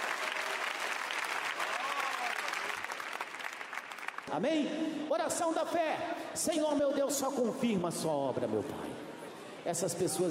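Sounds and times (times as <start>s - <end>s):
audience clapping hands: 0.0s - 4.4s
speech: 4.3s - 9.0s, 9.6s - 10.2s.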